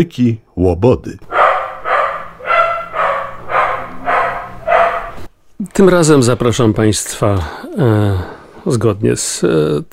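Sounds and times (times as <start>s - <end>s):
speech: 0.0s - 1.3s, 5.6s - 9.9s
dog barking: 1.3s - 5.3s.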